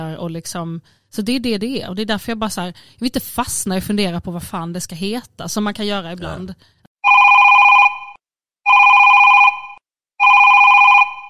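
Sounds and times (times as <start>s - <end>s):
speech: 0.0s - 7.3s
telephone ringing with electronic trill: 7.0s - 11.2s.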